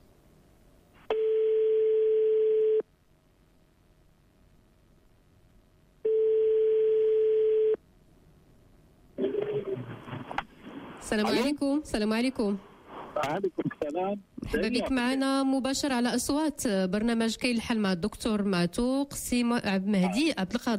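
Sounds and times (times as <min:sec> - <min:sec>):
telephone line tone while a phone number is redialed: 0:01.1 - 0:02.8, 0:06.1 - 0:07.8
noisy burst: 0:09.2 - 0:11.8
speech: 0:11.1 - 0:20.7.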